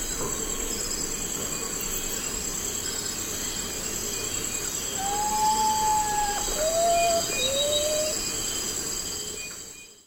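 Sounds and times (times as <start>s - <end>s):
insect drone: 0.0s - 10.0s
common potoo whistling: 5.0s - 8.2s.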